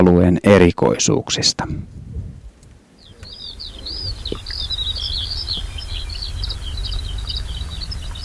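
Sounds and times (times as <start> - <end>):
speech: 0.0 - 2.0
steady low outdoor rumble: 1.6 - 8.2
birds chirping while nesting in open fields: 2.6 - 8.2.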